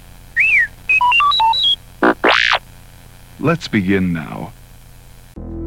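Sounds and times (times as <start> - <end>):
robot droid electronic chatter with whistles, warbling beeps and swooping squeals: 0.4 - 2.6
speech: 3.4 - 4.6.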